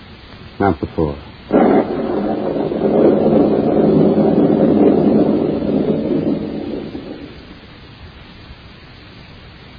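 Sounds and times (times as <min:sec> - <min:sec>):
speech: 0:00.6 - 0:01.3
thunder rolling during a storm: 0:01.5 - 0:08.0.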